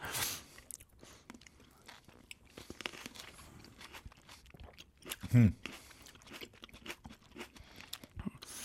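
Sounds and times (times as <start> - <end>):
crunchy chewing of food with mouth noises: 0.5 - 8.6
speech: 5.3 - 5.7.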